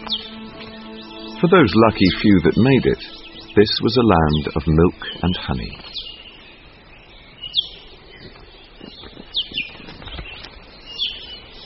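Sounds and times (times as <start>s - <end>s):
i'iwi honeycreeper calls in Hawaii: 0.0s - 11.6s
speech: 1.4s - 5.9s
i'iwi honeycreeper wingbeats fluttering: 8.2s - 10.7s.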